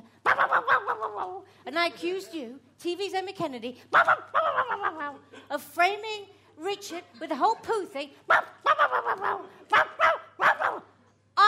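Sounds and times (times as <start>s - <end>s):
dog barking: 0.2s - 1.2s, 4.0s - 5.0s, 8.3s - 10.9s
speech: 1.5s - 10.1s.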